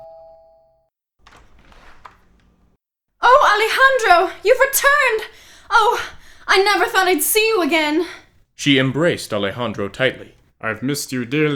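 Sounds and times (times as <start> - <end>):
doorbell chime: 0.0 - 0.9
speech: 3.6 - 11.5.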